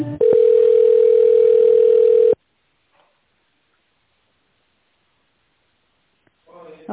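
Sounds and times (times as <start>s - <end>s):
telephone line tones during business call transfer: 0.2s - 2.4s.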